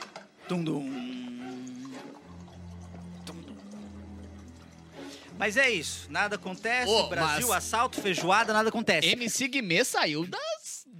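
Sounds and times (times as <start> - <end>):
speech: 0.5 - 1.2, 5.4 - 10.4
water poured steadily into a glass: 1.0 - 9.4.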